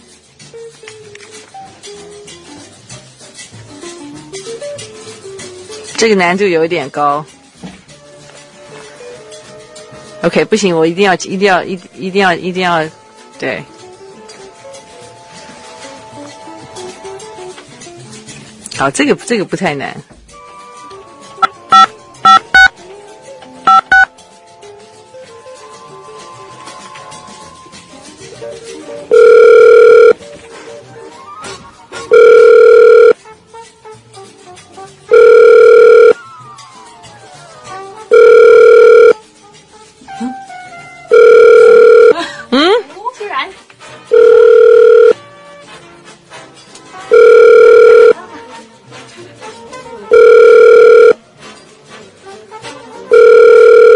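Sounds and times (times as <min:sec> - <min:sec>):
speech: 0:06.0 - 0:07.4, 0:10.2 - 0:13.7, 0:18.8 - 0:20.1
phone line ringback tones: 0:21.4 - 0:22.8, 0:23.7 - 0:24.1, 0:29.1 - 0:30.2, 0:32.0 - 0:33.2, 0:35.1 - 0:36.2, 0:38.1 - 0:39.2, 0:41.1 - 0:42.2, 0:44.1 - 0:45.2, 0:47.1 - 0:48.2, 0:50.1 - 0:51.2, 0:53.1 - 0:53.9
short beeps and clicks: 0:21.4 - 0:22.8, 0:23.7 - 0:24.1, 0:29.1 - 0:30.2, 0:32.1 - 0:33.2, 0:35.1 - 0:36.2, 0:38.1 - 0:39.2, 0:41.1 - 0:42.1, 0:44.1 - 0:45.2, 0:47.1 - 0:48.2, 0:50.1 - 0:51.2.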